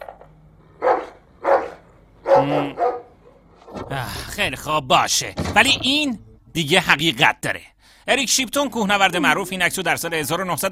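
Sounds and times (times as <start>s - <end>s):
dog barking played in reverse: 0.8s - 3.8s
speech: 2.4s - 2.8s, 3.9s - 10.7s.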